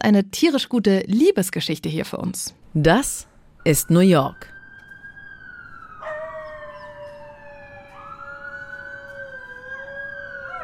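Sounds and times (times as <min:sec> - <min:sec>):
speech: 0:00.0 - 0:04.5
emergency sirens wailing in New York: 0:03.6 - 0:10.6
coyotes howling: 0:05.8 - 0:10.6.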